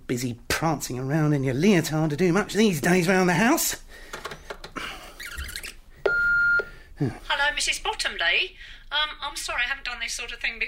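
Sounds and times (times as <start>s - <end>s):
speech: 0.1s - 4.2s, 7.0s - 10.6s
answering machine beep: 5.3s - 6.7s.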